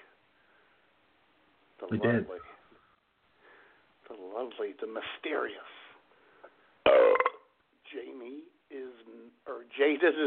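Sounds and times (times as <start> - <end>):
speech: 1.8 - 2.5, 4.4 - 5.8, 7.9 - 10.2
loud burp: 6.9 - 7.5.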